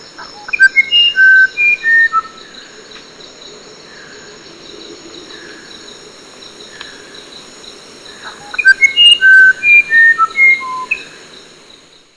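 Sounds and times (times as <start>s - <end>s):
Musician Wren whistled song: 0.0s - 2.6s, 8.2s - 11.2s
steady high insect drone: 0.0s - 12.1s.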